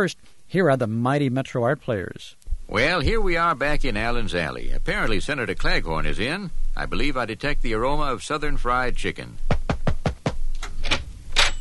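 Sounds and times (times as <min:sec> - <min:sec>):
speech: 0:00.0 - 0:09.5
knocking on a door: 0:09.5 - 0:10.4.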